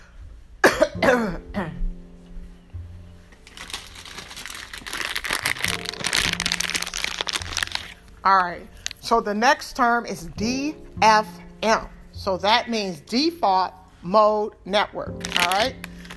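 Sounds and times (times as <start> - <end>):
person coughing sharply: 0.6 - 1.9
steady crackling crinkly rustling: 3.0 - 9.2, 15.1 - 16.1
speech: 8.2 - 15.8.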